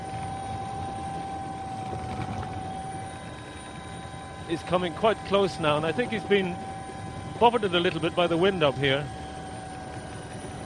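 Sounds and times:
helicopter rotor hum: 0.0s - 10.6s
speech: 4.5s - 6.7s, 7.4s - 9.2s.

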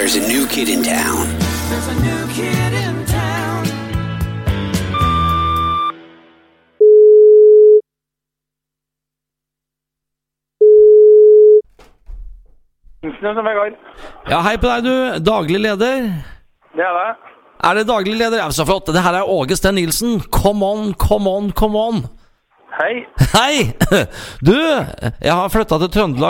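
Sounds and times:
music: 0.0s - 6.8s
speech: 0.1s - 3.8s, 13.0s - 26.2s
ringback tones of an outgoing phone call to a restaurant in Trondheim: 5.0s - 5.9s, 6.8s - 7.8s, 10.6s - 11.6s
person answering phone: 10.6s - 11.6s
laughter: 23.1s - 24.2s.

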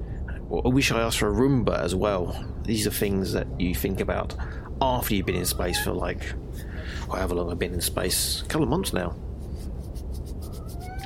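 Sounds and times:
steady low rumble: 0.0s - 9.6s
speech: 0.5s - 9.2s
cat meowing: 5.0s - 6.4s, 10.4s - 11.0s
repeating soft scratchy rustle: 5.8s - 11.0s.

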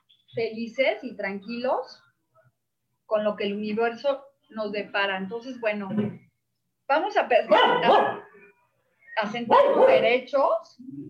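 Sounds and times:
speech: 0.4s - 2.1s, 3.1s - 6.2s, 6.9s - 8.3s, 9.2s - 11.0s
dogs barking: 7.5s - 8.4s, 9.4s - 10.2s.

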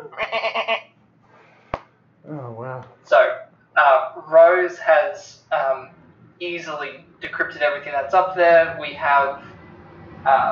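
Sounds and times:
person imitating a goat bleat: 0.0s - 0.8s
speech: 0.4s - 0.9s, 2.3s - 3.4s, 4.2s - 9.5s, 10.2s - 10.5s.

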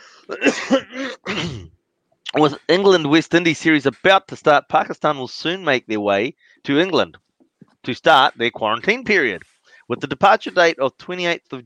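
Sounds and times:
speech: 0.3s - 1.6s, 2.3s - 7.2s, 7.8s - 11.6s
person clearing throat: 0.3s - 1.7s.

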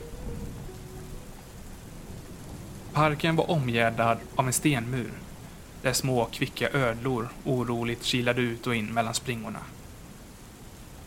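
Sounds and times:
low rumbling thunder: 0.0s - 7.5s
steady rain hissing: 0.0s - 11.0s
speech: 3.0s - 9.8s.

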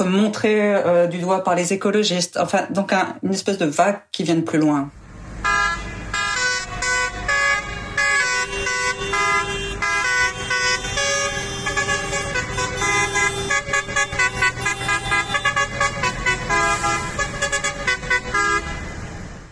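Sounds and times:
speech: 0.0s - 5.0s
large tractor horns honking at a farmers' protest in a small German town: 5.4s - 19.0s.

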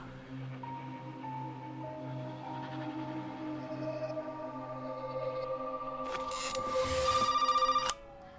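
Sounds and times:
sustained electronic tones: 1.0s - 8.3s
trilling telephone ring: 6.1s - 8.0s.

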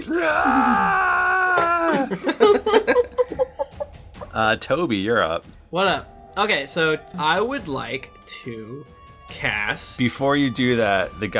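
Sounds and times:
speech: 0.0s - 0.8s, 4.4s - 11.3s
person letting out an acted anguished scream: 0.0s - 2.2s
laughter: 1.8s - 4.4s.

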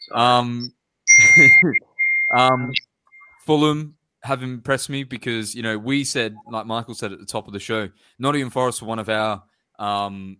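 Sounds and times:
speech: 0.0s - 2.9s, 3.5s - 10.3s
mobile phone ringing with a loud electronic ringtone: 1.1s - 1.7s.

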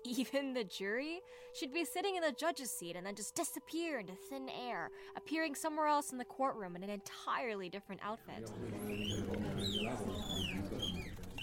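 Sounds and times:
speech: 0.0s - 11.1s
mockingbird tweeting and chirping: 8.7s - 11.4s.

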